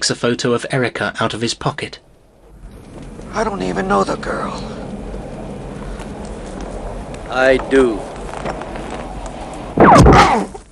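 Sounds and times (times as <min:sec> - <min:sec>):
speech: 0:00.0 - 0:02.1, 0:03.4 - 0:04.8, 0:07.3 - 0:08.6
gunshot: 0:09.8 - 0:10.6.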